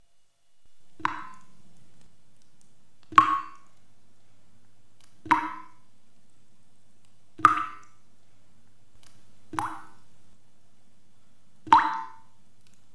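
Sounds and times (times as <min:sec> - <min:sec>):
water drips in a shower room: 0:01.0 - 0:03.9, 0:04.6 - 0:06.4, 0:07.0 - 0:08.1, 0:09.0 - 0:10.1, 0:11.6 - 0:12.9.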